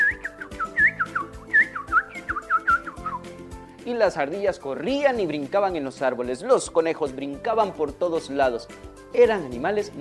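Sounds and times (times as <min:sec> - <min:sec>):
bright quick chirping bird calls: 0:00.0 - 0:03.2
soft sustained musical backdrop: 0:00.0 - 0:10.0
speech: 0:03.9 - 0:10.0.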